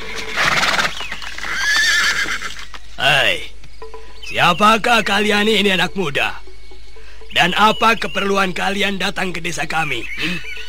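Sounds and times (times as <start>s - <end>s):
horse whinnying as riders dismount: 0.0s - 2.7s
speech: 4.3s - 6.4s, 7.4s - 10.5s.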